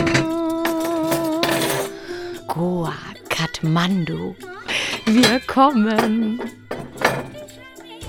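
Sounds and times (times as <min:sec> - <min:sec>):
dishes and cutlery clattering as a table is laid: 0:00.0 - 0:02.0, 0:04.6 - 0:08.0
speech: 0:03.6 - 0:04.5, 0:05.1 - 0:06.6.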